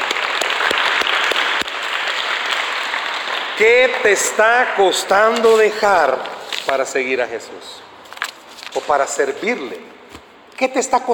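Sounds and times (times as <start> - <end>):
congregation applauding: 0.0 - 4.9
speech: 3.6 - 7.9, 8.7 - 9.9, 10.6 - 11.1.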